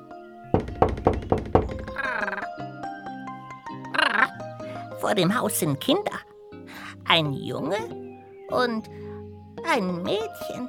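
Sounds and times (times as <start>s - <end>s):
firm knocks on a door: 0.5s - 2.2s
speech: 5.0s - 6.2s, 7.1s - 9.0s, 9.6s - 10.6s.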